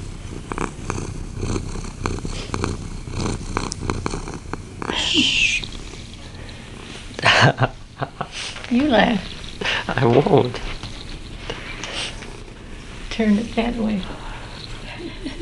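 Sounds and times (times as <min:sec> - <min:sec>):
female cat purring loudly: 0:00.0 - 0:15.4
speech: 0:07.4 - 0:07.8, 0:08.7 - 0:09.3, 0:09.9 - 0:10.8, 0:13.2 - 0:14.2.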